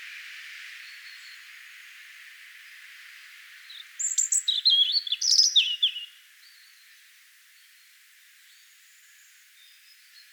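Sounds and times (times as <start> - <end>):
background hiss: 0.0 - 10.3
European robin singing: 3.7 - 6.7.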